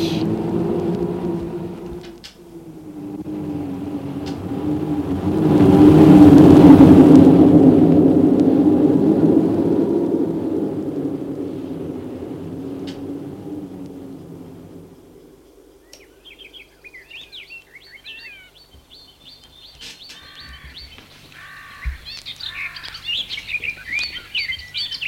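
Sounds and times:
soft low hum: 0.0s - 25.0s
several birds singing and chirping in the morning: 15.2s - 25.0s.

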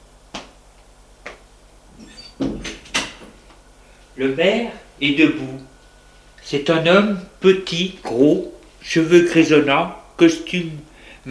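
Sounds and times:
door of a mayor's office opening with clunks and rattles: 2.0s - 3.4s
speech: 4.2s - 5.6s, 6.5s - 11.2s.

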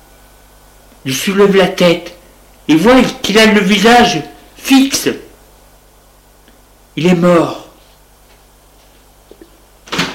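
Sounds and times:
quiet hum: 0.0s - 10.1s
speech: 1.0s - 5.2s, 7.0s - 7.6s
office door slamming shut: 9.9s - 10.1s.

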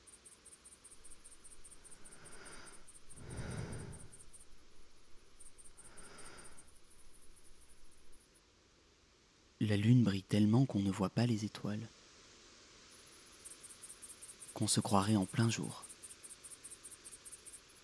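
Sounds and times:
crickets chirping on a summer night: 0.0s - 8.4s, 12.8s - 17.8s
speech: 9.6s - 12.0s, 14.6s - 15.9s.

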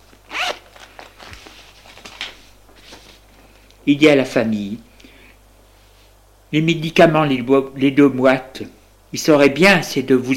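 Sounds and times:
rustling and handling of papers from a satchel: 0.0s - 3.7s
satchel zipper unzipping in an office: 0.3s - 0.6s
speech: 3.9s - 4.9s, 6.5s - 10.3s.

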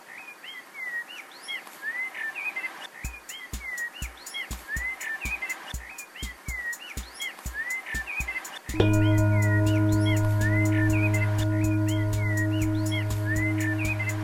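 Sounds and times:
bird singing: 3.0s - 14.2s.

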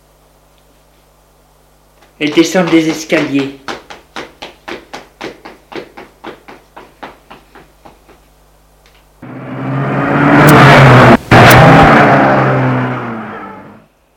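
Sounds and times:
hurried taps: 2.0s - 8.3s
speech: 2.2s - 3.7s
car engine roaring as it accelerates: 9.2s - 13.9s.

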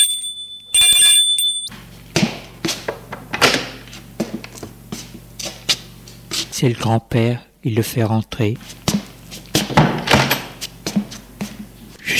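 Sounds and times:
home doorbell with loud steady buzzing tone: 0.0s - 1.7s
low hum: 0.0s - 12.1s
speech: 6.6s - 8.8s
thuds and knocks: 9.6s - 10.4s.

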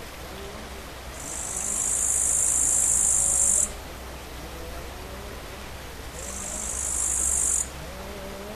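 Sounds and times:
faint background hum: 0.0s - 8.5s
bush cricket song of high hissing buzzes: 0.3s - 8.5s.

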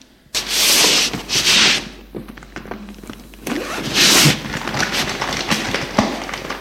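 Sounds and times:
scraping rubs of suitcase handled on table: 0.4s - 2.0s, 3.5s - 5.2s
suitcase zipper pulls: 3.5s - 5.1s.

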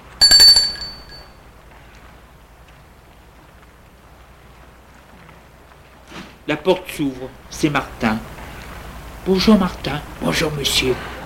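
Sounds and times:
doorbell ringing at a house door: 0.0s - 1.3s
speech: 6.5s - 8.3s, 9.2s - 11.1s.

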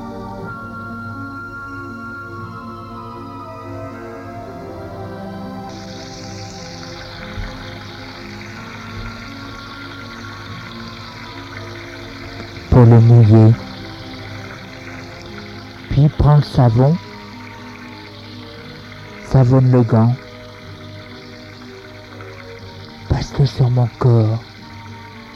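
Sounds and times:
humming pipe-like tone: 0.0s - 25.3s
water running from a tap: 5.7s - 25.3s
speech: 12.8s - 13.6s, 16.0s - 17.1s, 19.4s - 20.2s, 23.6s - 24.5s.

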